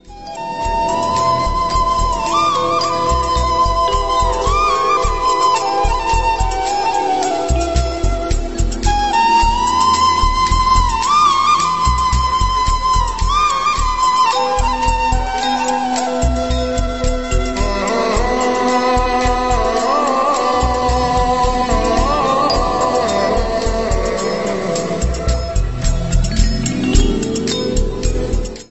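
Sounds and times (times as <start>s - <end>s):
flute background music ringtone: 0.0s - 28.6s.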